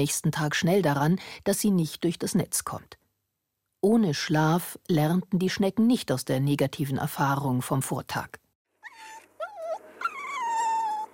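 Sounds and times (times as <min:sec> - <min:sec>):
speech: 0:00.0 - 0:03.0, 0:03.8 - 0:08.4
sleeping dog whimpering: 0:08.8 - 0:11.1.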